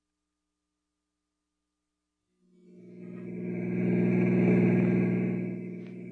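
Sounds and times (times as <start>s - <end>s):
car engine starting up and driving: 2.8s - 6.1s.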